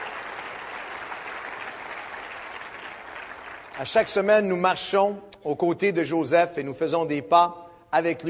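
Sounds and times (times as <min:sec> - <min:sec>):
audience applauding: 0:00.0 - 0:04.3
speech: 0:03.8 - 0:08.2.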